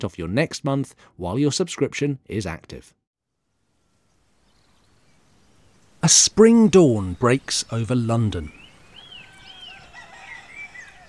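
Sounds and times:
speech: 0.0s - 3.0s, 6.0s - 8.6s
River Thames lapping against its banks: 4.2s - 11.0s
cockerels crowing at a spring dawn in London: 4.6s - 11.0s.

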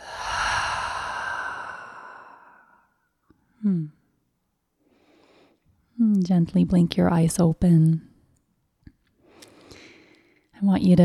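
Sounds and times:
deep breath exhaled through an open mouth: 0.0s - 2.9s
speech: 3.6s - 4.0s, 6.2s - 8.1s, 10.6s - 11.0s.

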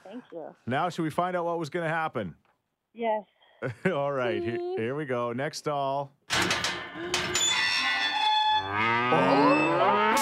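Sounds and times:
speech: 0.1s - 7.5s
cow mooing: 8.6s - 10.2s.

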